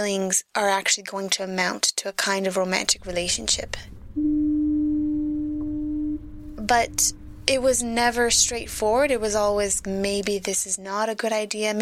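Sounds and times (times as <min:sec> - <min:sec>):
speech: 0:00.0 - 0:04.3, 0:06.7 - 0:11.8
faint rumble: 0:02.7 - 0:10.7
foghorn blowing: 0:03.0 - 0:10.4.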